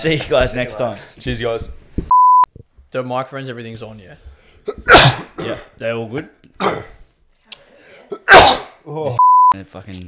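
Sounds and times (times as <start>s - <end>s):
speech: 0.0s - 2.1s, 2.9s - 6.9s, 8.1s - 10.0s
person sneezing: 4.7s - 5.7s, 6.6s - 7.0s, 8.1s - 8.8s.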